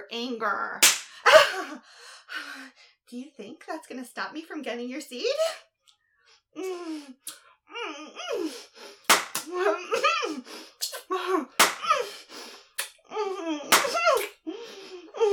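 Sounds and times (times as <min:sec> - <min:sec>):
speech: 0:00.1 - 0:05.7, 0:06.5 - 0:15.3
slaps on skin: 0:00.8 - 0:01.2, 0:09.1 - 0:09.5, 0:11.6 - 0:12.0, 0:13.7 - 0:14.3.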